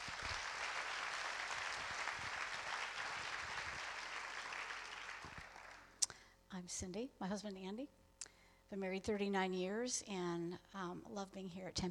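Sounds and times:
audience applause: 0.0 - 6.0
speech: 6.6 - 8.0, 8.7 - 11.8.

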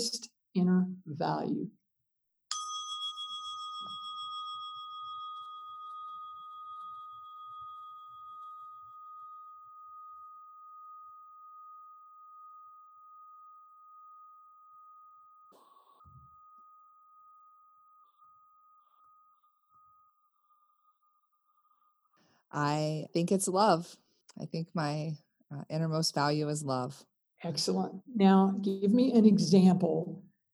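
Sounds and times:
speech: 0.0 - 1.8, 22.6 - 30.2
single bell struck and ringing: 2.5 - 20.3.

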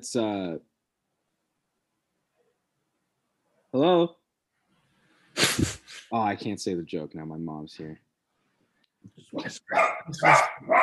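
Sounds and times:
speech: 0.0 - 0.7, 3.7 - 4.2, 5.5 - 8.0, 9.1 - 10.8
dog barking: 9.6 - 10.8.

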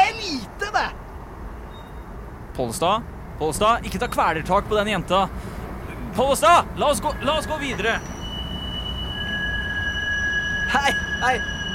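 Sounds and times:
tram rumbling with a steady low roar: 0.0 - 11.7
tram wheels giving off high-pitched squeals: 1.6 - 2.4, 3.4 - 11.7
speech: 2.6 - 5.5, 6.2 - 8.1, 10.7 - 11.7.

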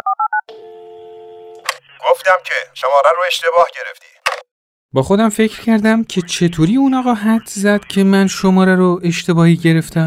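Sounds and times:
phone ringing tone on the line: 0.0 - 2.1
phone line click: 0.5 - 1.8
speech: 2.2 - 4.1, 4.9 - 10.0.

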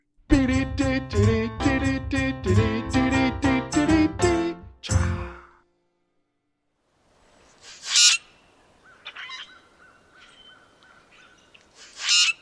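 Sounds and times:
bright rhythmic music: 0.4 - 5.6
grackles squawking outdoors: 7.6 - 8.3, 8.9 - 12.4.

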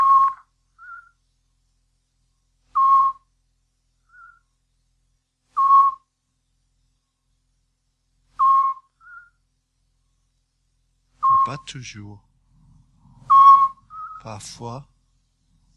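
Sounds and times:
Eurasian scops owl giving mellow whistled notes: 0.0 - 1.2, 2.7 - 3.3, 4.0 - 4.5, 5.5 - 6.1, 8.4 - 9.4, 11.2 - 11.6, 13.2 - 14.3
speech: 11.5 - 12.3, 14.2 - 14.9.

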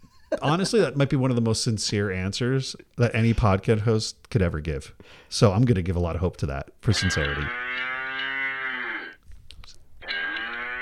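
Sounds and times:
speech: 0.3 - 7.9
cow mooing sound effect from soundboard: 6.9 - 9.2, 10.0 - 10.8.

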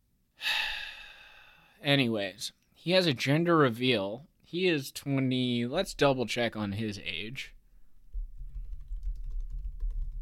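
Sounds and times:
speech: 1.8 - 7.6
rapid typing on a computer keyboard: 8.4 - 10.2.

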